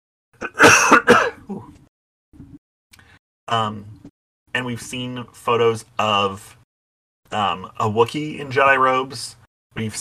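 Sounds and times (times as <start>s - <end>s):
person coughing: 0.4s - 1.7s
throat clearing: 0.4s - 1.8s
speech: 3.5s - 4.0s, 4.6s - 6.6s, 7.3s - 9.9s.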